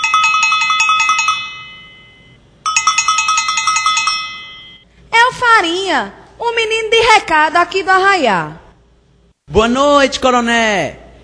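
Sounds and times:
house doorbell ringing in a small village: 0.0s - 4.8s
speech: 5.9s - 8.6s, 9.5s - 11.0s.

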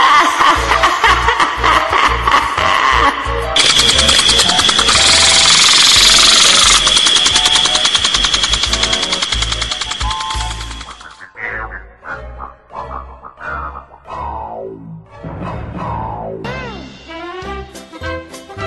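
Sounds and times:
laughter: 0.0s - 3.3s, 10.8s - 13.9s
motor scooter engine running: 3.6s - 11.2s.

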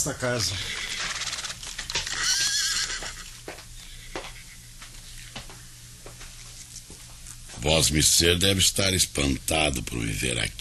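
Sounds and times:
speech: 0.0s - 1.0s, 7.6s - 10.6s
horse being ridden at a farm whinnying: 2.0s - 3.4s
hooves clopping on hard ground: 2.0s - 4.4s.

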